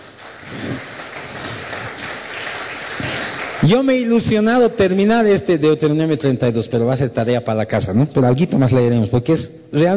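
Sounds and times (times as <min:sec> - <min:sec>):
audience applauding: 0:00.0 - 0:04.7
speech: 0:03.6 - 0:09.9.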